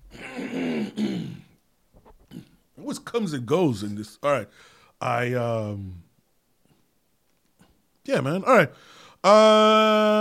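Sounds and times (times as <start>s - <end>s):
person clearing throat: 0.0s - 1.6s, 2.2s - 2.6s
speech: 2.9s - 6.0s, 8.0s - 10.1s
faint breath: 4.5s - 5.0s, 8.8s - 9.2s.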